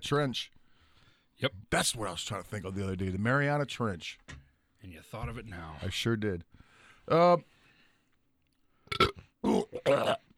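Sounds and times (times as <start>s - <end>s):
speech: 0.0s - 0.6s, 1.4s - 7.5s, 8.9s - 10.2s
person burping up a piece of taco pie: 8.9s - 10.3s.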